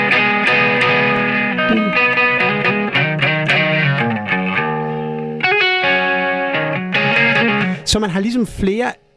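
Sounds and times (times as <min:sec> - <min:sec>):
effected electric guitar strumming chords with chorus and mild distortion: 0:00.0 - 0:07.9
speech: 0:01.7 - 0:02.0, 0:07.9 - 0:09.1.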